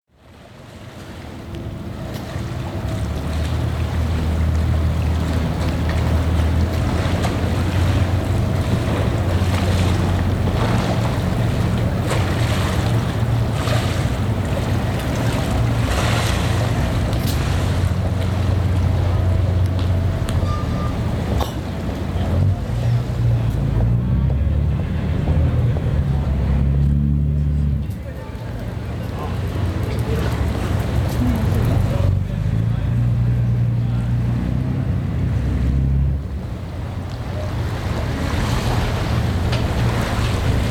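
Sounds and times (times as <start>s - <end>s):
vaporetto water bus at Zattere: 0.1s - 40.7s.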